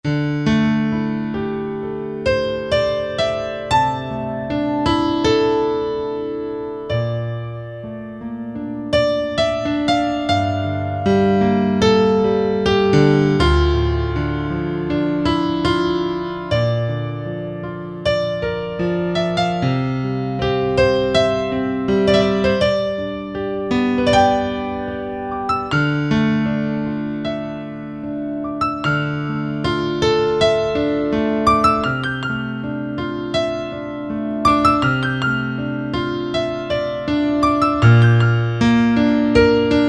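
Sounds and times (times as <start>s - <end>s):
natural grand piano preset on a synthesizer: 0.0s - 39.8s.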